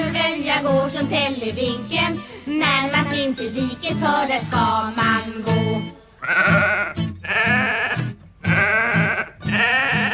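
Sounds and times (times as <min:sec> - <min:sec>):
speech: 0:00.6 - 0:05.5
sheep and lamb bleating: 0:06.2 - 0:10.1.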